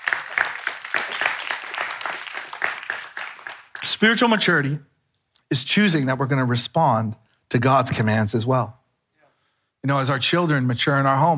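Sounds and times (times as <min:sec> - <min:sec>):
live audience clapping: 0:00.0 - 0:04.4
speech: 0:04.0 - 0:04.9, 0:05.5 - 0:08.8, 0:09.8 - 0:11.3.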